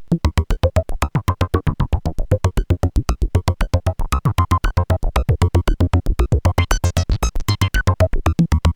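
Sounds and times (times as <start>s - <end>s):
synthesizer: 0.2s - 8.7s.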